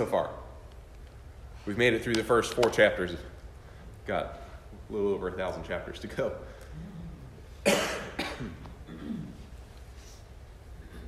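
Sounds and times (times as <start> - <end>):
speech: 0.0 - 0.4, 1.6 - 3.4, 4.0 - 6.9, 7.6 - 8.6
person coughing: 7.6 - 9.5.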